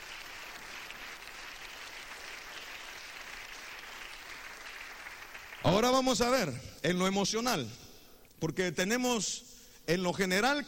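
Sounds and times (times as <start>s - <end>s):
crowd at a religious sermon clapping: 0.0s - 6.6s
speech: 5.6s - 7.8s, 8.4s - 10.6s.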